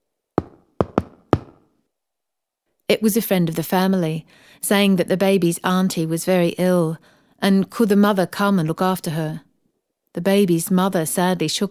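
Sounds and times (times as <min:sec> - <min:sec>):
firm knocking on a door: 0:00.4 - 0:01.6
speech: 0:02.9 - 0:09.5, 0:10.1 - 0:11.6.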